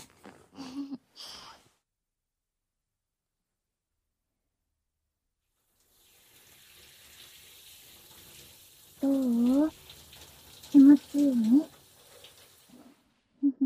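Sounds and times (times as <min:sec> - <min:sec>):
shower spray running: 0:05.5 - 0:13.2
splashing: 0:05.7 - 0:13.0.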